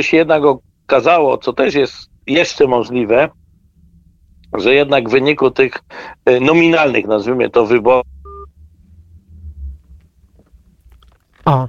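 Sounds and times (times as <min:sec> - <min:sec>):
speech: 0:00.0 - 0:03.4, 0:04.5 - 0:08.1, 0:11.4 - 0:11.6
low rumbling telephone line noise: 0:00.0 - 0:11.2
telephone dialing beep during redial: 0:08.3 - 0:08.5.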